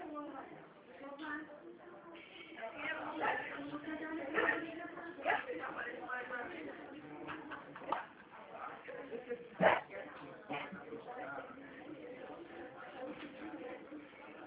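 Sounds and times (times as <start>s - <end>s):
low murmur: 0.0s - 14.4s
female dog barking over a phone line: 9.6s - 9.9s.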